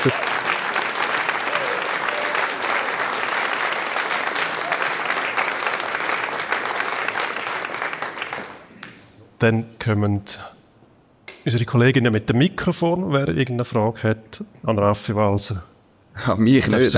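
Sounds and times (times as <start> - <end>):
speech: 0.0 - 0.3, 9.4 - 10.6, 11.4 - 16.9
audience applause: 0.0 - 8.7.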